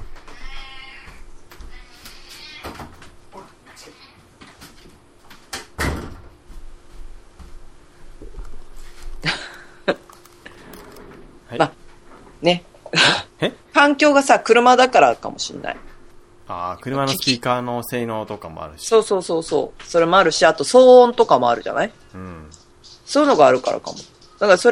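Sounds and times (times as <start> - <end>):
pet cat meowing: 0.3 - 2.7
speech: 12.5 - 12.7, 13.9 - 15.9, 16.5 - 24.7.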